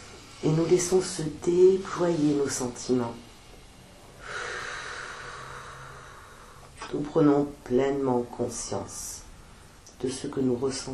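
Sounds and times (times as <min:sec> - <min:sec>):
speech: 0:00.4 - 0:03.3, 0:06.9 - 0:09.2, 0:10.0 - 0:10.9
slow deep in-breath during a guided meditation: 0:03.2 - 0:06.8.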